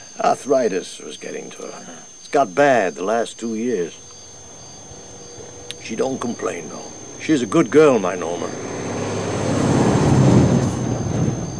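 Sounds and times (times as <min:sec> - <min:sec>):
speech: 0:00.2 - 0:04.1, 0:05.8 - 0:08.8
big truck passing on road: 0:04.0 - 0:11.5.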